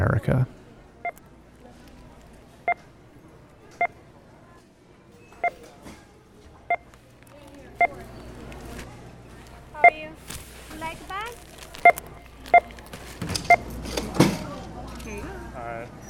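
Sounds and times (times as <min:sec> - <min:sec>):
store murmur: 0:00.0 - 0:16.0
checkout scanner beeps at a checkout line in the Bay Area: 0:00.9 - 0:05.8, 0:06.5 - 0:16.0.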